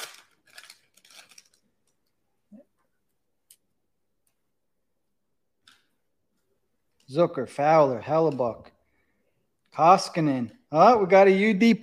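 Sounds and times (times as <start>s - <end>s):
crinkly wrapper of a pack of hockey trading cards torn open: 0.0s - 2.0s
speech: 7.1s - 8.8s, 9.8s - 11.8s.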